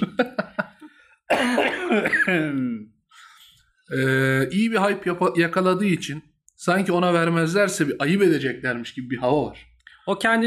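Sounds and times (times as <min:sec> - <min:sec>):
speech: 0:00.0 - 0:00.5, 0:02.3 - 0:03.0, 0:03.9 - 0:10.4
laughter: 0:00.0 - 0:00.9
quick coughs: 0:01.3 - 0:02.8
strained throat-clearing: 0:01.3 - 0:02.8.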